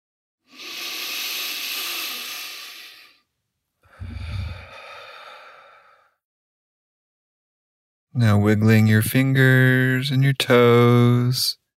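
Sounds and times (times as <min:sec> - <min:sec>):
breathy exhale through the mouth: 0:00.5 - 0:03.3, 0:03.9 - 0:06.2
long hissing inhale through the nose: 0:00.5 - 0:03.3, 0:03.9 - 0:06.2
speech: 0:08.2 - 0:11.6.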